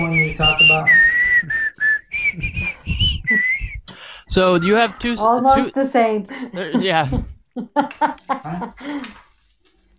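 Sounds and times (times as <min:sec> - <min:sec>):
person whistling a short bouncy melody: 0:00.0 - 0:04.1
speech: 0:00.3 - 0:01.0, 0:04.3 - 0:07.3
low rumbling breath: 0:03.9 - 0:04.3, 0:08.8 - 0:09.3
laughter: 0:06.3 - 0:09.2.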